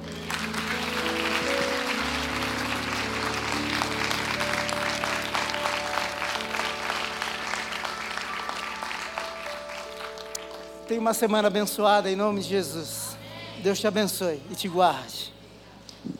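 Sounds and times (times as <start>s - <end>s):
crowd clapping: 0.0s - 11.0s
sustained low musical tones: 0.0s - 14.8s
speech: 10.9s - 13.0s, 13.6s - 15.4s.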